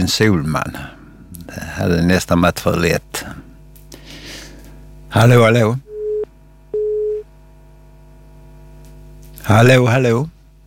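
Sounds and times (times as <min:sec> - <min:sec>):
speech: 0:00.0 - 0:03.4, 0:05.1 - 0:05.8, 0:09.5 - 0:10.4
faint hum: 0:00.0 - 0:10.6
telephone line tone beeps on an unanswered call: 0:05.9 - 0:07.2.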